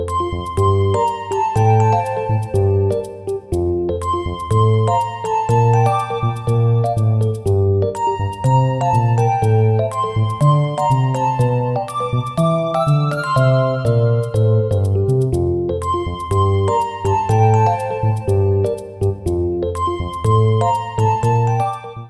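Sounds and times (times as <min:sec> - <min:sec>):
underwater theme music: 0:00.1 - 0:22.0.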